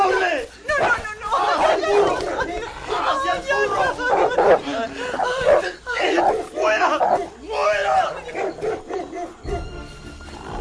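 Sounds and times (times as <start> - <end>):
laughter: 0.0 - 9.5
dogs barking while attacking: 0.0 - 9.8
dogs growling and snarling while attacking: 1.6 - 7.4, 8.1 - 9.7, 10.3 - 10.5.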